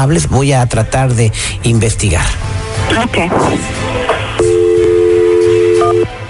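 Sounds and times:
speech: 0:00.0 - 0:04.2
telephone dial tone while placing call: 0:04.4 - 0:06.2.

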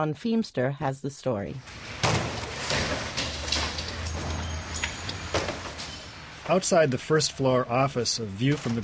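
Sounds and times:
speech: 0:00.0 - 0:02.3, 0:06.5 - 0:08.8
doors and debris thrown into metal dumpsters: 0:01.6 - 0:06.6.

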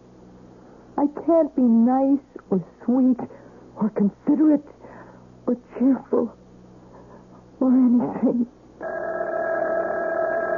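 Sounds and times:
speech: 0:01.0 - 0:04.8, 0:05.5 - 0:06.4, 0:07.6 - 0:08.6
telephone ringing: 0:08.8 - 0:10.5.

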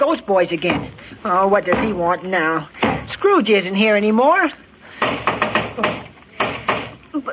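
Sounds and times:
speech: 0:00.0 - 0:04.6
knocking on a door: 0:05.0 - 0:07.0.

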